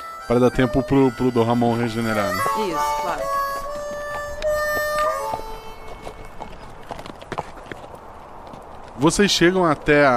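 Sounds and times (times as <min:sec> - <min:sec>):
speech: 0:00.3 - 0:03.4, 0:09.0 - 0:10.1
horse hooves clip-clopping at a walking pace: 0:02.1 - 0:10.1.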